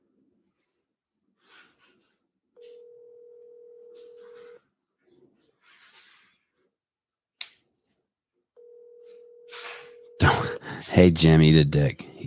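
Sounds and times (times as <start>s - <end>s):
phone ringback tone heard through the line: 2.6s - 4.6s, 8.6s - 10.4s
speech: 10.2s - 12.1s.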